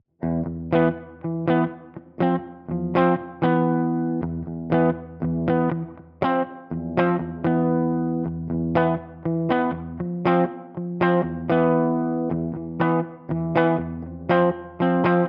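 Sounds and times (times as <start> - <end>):
electric guitar through an overdrive pedal: 0.2 - 15.2.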